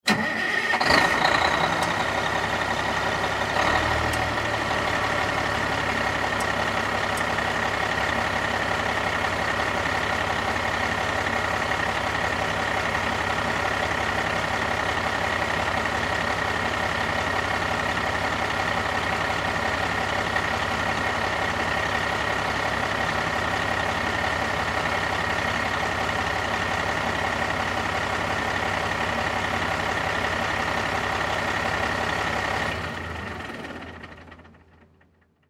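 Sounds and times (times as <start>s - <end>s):
fire truck engine starting, idling and turning off, exterior: 0.0s - 35.4s.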